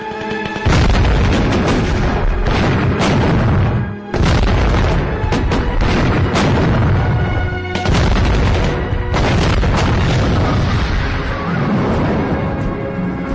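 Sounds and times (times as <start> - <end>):
deep booming grenade blasts: 0.0 - 12.7
heavy continuous gunfire: 0.1 - 11.2.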